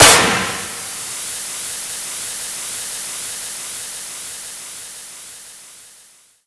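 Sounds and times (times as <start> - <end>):
M18 smoke grenade exploding: 0.0 - 1.3.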